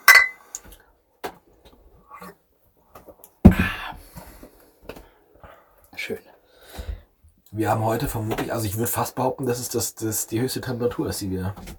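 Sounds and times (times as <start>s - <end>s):
glasses clinking during a toast: 0.0s - 0.4s
speech: 6.1s - 6.3s, 7.6s - 11.7s.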